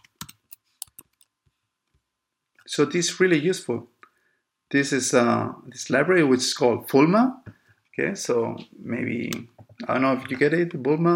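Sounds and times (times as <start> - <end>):
typing code on a computer keyboard: 0.0 - 1.3
speech: 2.7 - 4.0, 4.7 - 11.1.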